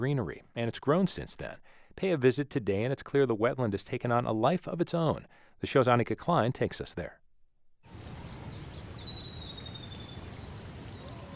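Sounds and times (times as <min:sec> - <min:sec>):
speech: 0:00.0 - 0:07.2
common yellowthroat singing in a wetland: 0:07.9 - 0:11.3.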